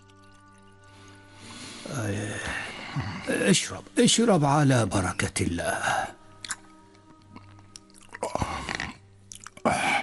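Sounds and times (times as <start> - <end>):
water poured into a glass: 0.0 - 2.7
speech: 1.9 - 6.2.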